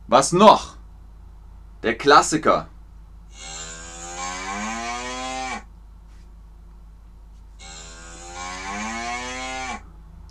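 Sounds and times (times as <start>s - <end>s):
speech: 0.1s - 0.8s, 1.8s - 2.7s
cow mooing: 3.3s - 5.7s, 7.6s - 9.8s.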